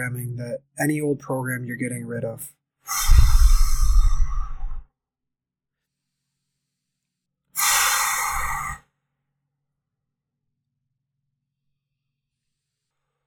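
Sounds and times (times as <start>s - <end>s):
speech: 0.0s - 3.3s
breathing in through the nose during a guided breathing exercise: 2.9s - 4.8s, 5.9s - 8.9s
exhaling through the mouth during a guided breathing exercise: 2.9s - 4.8s, 5.9s - 8.9s.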